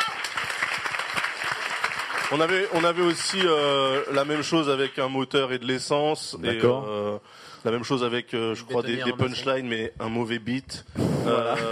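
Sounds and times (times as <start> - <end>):
audience applause: 0.0 - 5.2
speech: 2.3 - 11.6.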